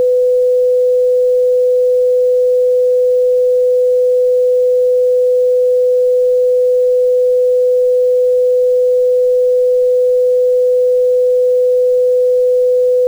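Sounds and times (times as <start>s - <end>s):
sine wave buzz: 0.0s - 13.0s.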